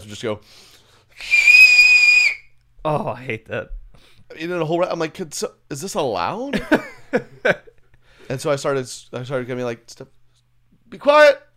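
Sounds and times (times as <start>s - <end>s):
speech: 0.1s - 1.4s, 2.8s - 7.7s, 8.3s - 10.2s, 10.9s - 11.5s
person imitating a loud two-finger whistle: 1.2s - 2.4s.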